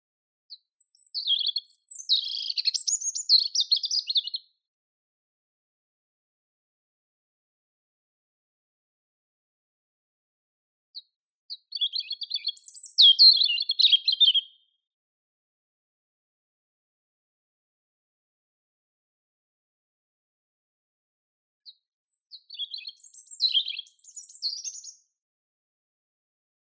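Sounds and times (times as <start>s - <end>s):
European robin Erithacus rubecula singing: 0.5s - 4.5s, 11.0s - 14.7s, 21.7s - 25.1s.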